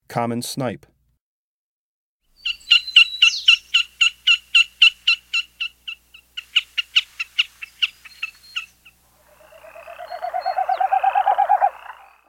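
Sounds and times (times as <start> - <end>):
common snipe calling: 2.4 - 12.2.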